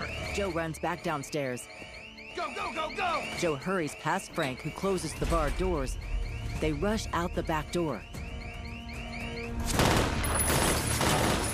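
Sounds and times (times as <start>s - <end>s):
speech: 0.4s - 8.2s
rapid gunfire from police officers shooting from behind their cruisers: 9.6s - 11.5s.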